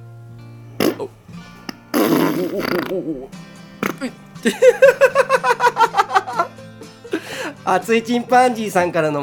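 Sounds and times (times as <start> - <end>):
person imitating a fart with their mouth: 0.8 - 4.2
speech: 1.0 - 1.4, 2.4 - 5.9, 7.6 - 9.2
laughter: 4.4 - 7.4.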